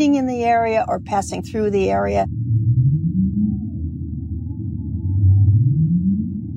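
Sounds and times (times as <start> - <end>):
speech: 0.0 - 2.4
dense rumble of underwater noise: 0.7 - 6.5
low rising whale calls recorded underwater by an acoustic buoy in New York Harbor: 2.3 - 6.5.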